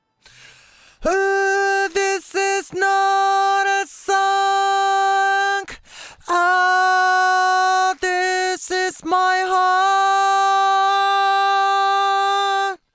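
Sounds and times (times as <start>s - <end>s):
vocoder voice: 0.4s - 12.8s.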